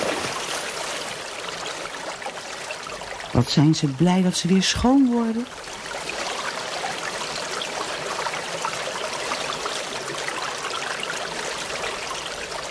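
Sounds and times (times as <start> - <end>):
water streaming and trickling: 0.0 - 12.6
speech: 3.3 - 5.8.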